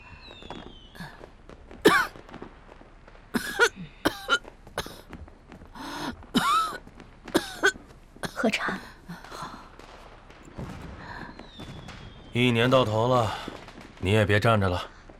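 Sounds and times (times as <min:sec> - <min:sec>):
person coughing: 0:01.9 - 0:02.1, 0:03.4 - 0:05.0, 0:06.4 - 0:06.8, 0:07.4 - 0:08.4
speech: 0:08.4 - 0:08.8, 0:12.4 - 0:13.4, 0:14.0 - 0:14.9.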